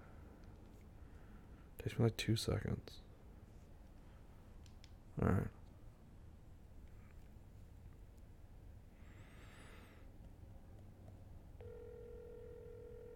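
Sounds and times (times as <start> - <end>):
speech: 1.8 - 3.0, 5.2 - 5.6
phone ringing tone heard through a handset: 11.6 - 13.1.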